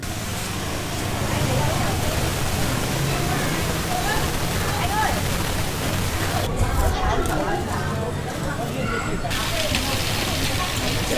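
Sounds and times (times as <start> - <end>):
bamboo and nứa strips crackling while being woven by villagers: 0.0 - 6.5, 9.3 - 11.1
villagers chatting and laughing: 0.0 - 11.1.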